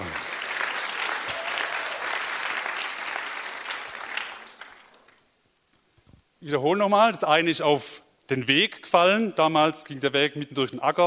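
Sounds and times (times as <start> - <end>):
audience clapping: 0.0 - 5.2
speech: 6.4 - 11.0.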